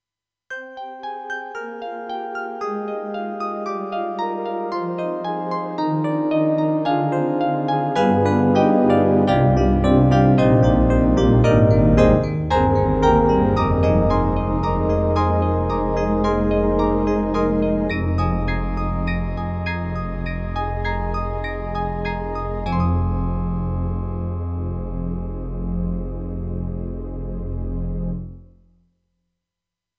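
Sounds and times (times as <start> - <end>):
synthesizer electric piano pad: 0.8 - 28.5.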